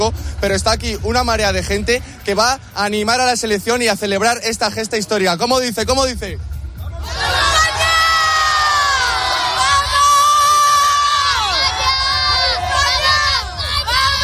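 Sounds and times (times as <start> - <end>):
speech: 0.0 - 7.2
crowd of children chanting a football cheer: 7.0 - 14.2.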